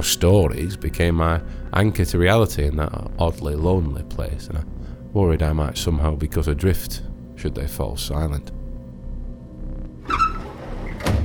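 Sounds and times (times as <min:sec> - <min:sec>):
speech: 0:00.0 - 0:08.6
door between train carriages creaking open: 0:10.0 - 0:11.2.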